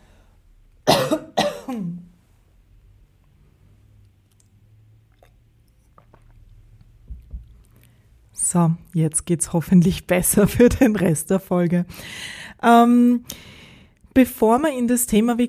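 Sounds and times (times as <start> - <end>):
person with a frog in the throat coughing harshly: 0.8 - 2.1
speech: 1.1 - 1.9, 8.5 - 13.6, 14.2 - 15.4
sipping and swallowing water: 4.0 - 8.1.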